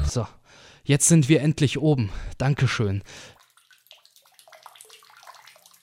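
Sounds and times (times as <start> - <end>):
speech: 0.1 - 3.3
water dripping from a tap: 3.2 - 5.7.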